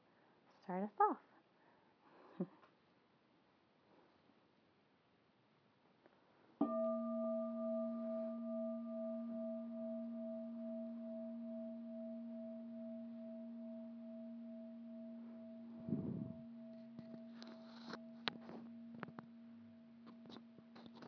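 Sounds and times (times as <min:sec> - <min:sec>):
speech: 0:00.7 - 0:01.3
struck bell ringing with a wavering hum: 0:06.6 - 0:20.9.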